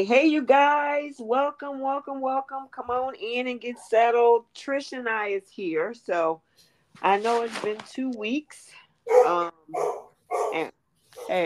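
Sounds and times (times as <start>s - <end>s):
speech: 0.0s - 11.4s
dog barking: 9.1s - 11.4s.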